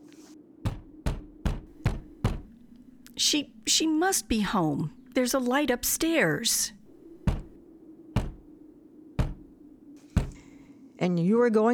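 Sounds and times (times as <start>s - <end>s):
heavy knocks on a door: 0.7s - 3.2s, 6.8s - 7.6s, 8.2s - 8.6s, 9.2s - 9.6s, 10.2s - 10.5s
speech: 3.2s - 6.8s, 11.0s - 11.7s.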